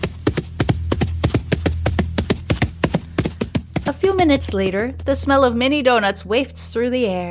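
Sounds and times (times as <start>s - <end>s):
horse hooves trotting on a main road: 0.0s - 5.5s
speech: 4.2s - 7.3s.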